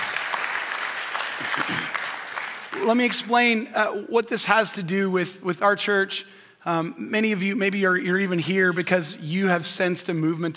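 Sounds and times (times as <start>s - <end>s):
audience clapping in a church service: 0.0s - 3.3s
speech: 1.4s - 2.0s, 2.7s - 10.5s.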